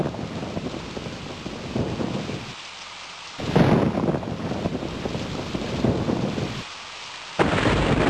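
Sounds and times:
thunder rumbling low and close: 0.0s - 2.5s, 3.4s - 6.6s, 7.4s - 8.0s
gusts of wind buffeting the microphone: 0.0s - 2.6s, 3.4s - 6.7s, 7.4s - 8.0s
steady heavy rain pouring down: 0.0s - 8.0s.

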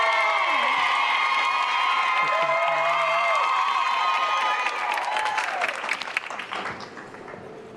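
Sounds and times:
crowd cheering and whooping: 0.0s - 6.2s
crowd applauding: 0.0s - 7.7s.

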